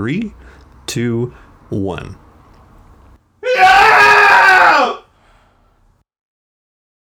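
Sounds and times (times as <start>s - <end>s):
speech: 0.0s - 2.2s
cathartic human scream: 3.4s - 5.0s.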